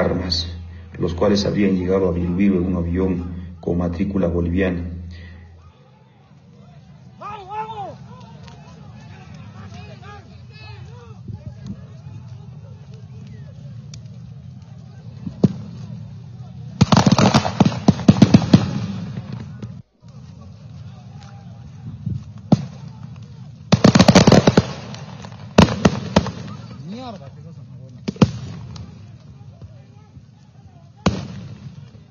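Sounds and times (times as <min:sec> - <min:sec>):
speech: 0:00.0 - 0:04.9
outdoor crowd murmur and voices: 0:00.0 - 0:32.1
firecrackers exploding in loud crackling bursts: 0:07.0 - 0:30.1, 0:31.0 - 0:32.1.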